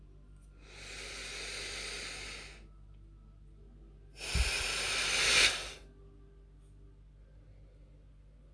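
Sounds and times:
forceful gusty exhale: 0.6 - 2.6, 4.2 - 5.8
long airy deep inhale: 0.6 - 2.7, 4.2 - 5.9.

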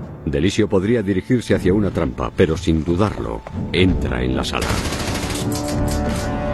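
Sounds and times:
speech: 0.3 - 6.3
machine gun fire: 4.6 - 6.4.

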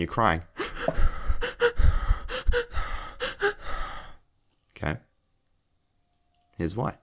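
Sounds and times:
speech: 0.0 - 0.5, 4.8 - 5.1, 6.6 - 7.0
double inhale breathing technique with sharp sniffing intakes of breath: 0.4 - 4.2.

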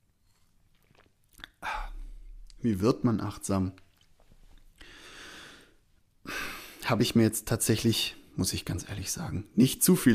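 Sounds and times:
drink being sipped with a breathy slurp: 0.1 - 2.0
speech: 2.6 - 3.8, 6.9 - 10.1.

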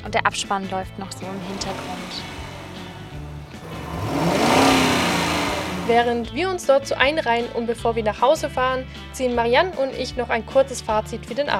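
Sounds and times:
speech: 0.0 - 2.4, 5.9 - 11.5
car engines revving and accelerating as vehicles leave a line: 1.0 - 6.5.

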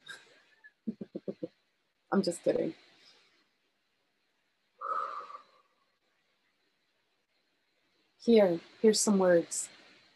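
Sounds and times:
speech: 2.2 - 2.9, 8.2 - 9.8
single deep airy breath: 4.8 - 5.8.

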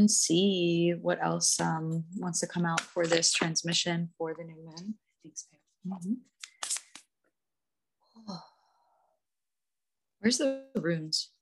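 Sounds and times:
speech: 0.0 - 6.5, 8.2 - 8.5, 10.2 - 11.3
oracle cards being shuffled: 6.4 - 7.2.

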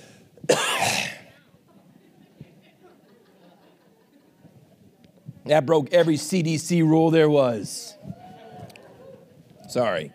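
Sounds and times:
harsh throat-clearing cough: 0.5 - 1.3
laughter: 1.7 - 5.0
speech: 5.5 - 7.9, 9.7 - 10.1.

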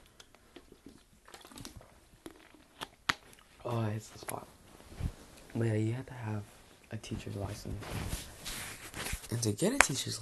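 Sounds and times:
sharper click-like gulp: 0.0 - 3.7
person sipping and swallowing water: 0.0 - 4.4
speech: 3.7 - 4.6, 5.6 - 8.3, 9.3 - 10.1.

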